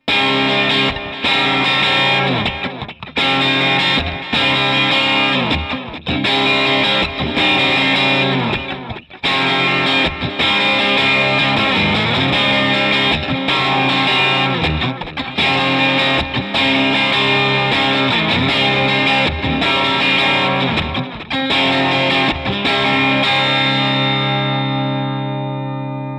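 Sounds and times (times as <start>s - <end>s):
crunch guitar chords with multiple effects: 0.0s - 26.1s.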